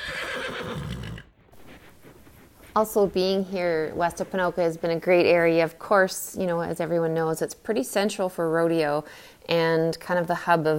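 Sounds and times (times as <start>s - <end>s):
horse neighing: 0.0s - 1.4s
speech: 2.8s - 10.7s.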